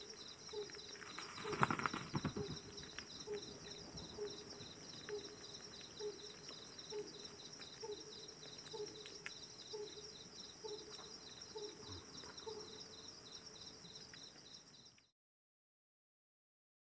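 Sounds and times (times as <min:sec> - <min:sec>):
male pallid scops owl hooting: 0:00.0 - 0:09.1, 0:10.6 - 0:12.8
rustle: 0:00.0 - 0:14.8
constant high insect buzz: 0:00.0 - 0:15.0
bat wingbeats: 0:00.5 - 0:05.3.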